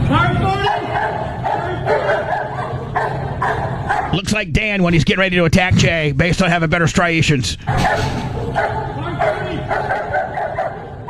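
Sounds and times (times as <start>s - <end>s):
steady noisy background: 0.0s - 11.0s
dog barking, straining to get to a man: 0.6s - 4.2s, 7.7s - 11.0s
speech: 4.2s - 9.0s.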